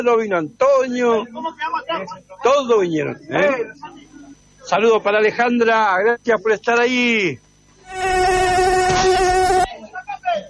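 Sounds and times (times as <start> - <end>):
speech: 0.0 - 4.0, 4.7 - 8.1
mosquito whine: 7.8 - 10.0.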